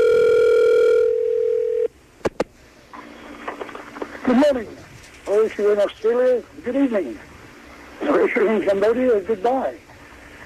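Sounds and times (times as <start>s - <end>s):
telephone dial tone: 0.0s - 1.9s
speech: 4.3s - 4.8s, 5.4s - 7.3s, 8.0s - 9.8s.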